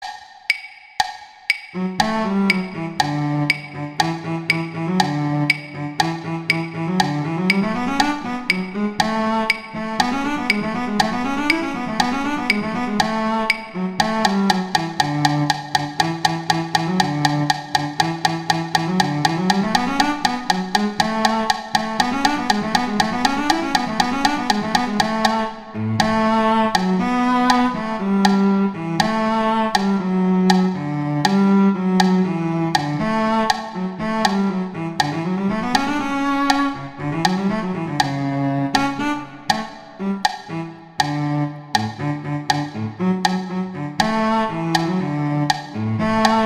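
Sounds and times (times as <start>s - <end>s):
cello playing in a duet: 1.7s - 46.4s.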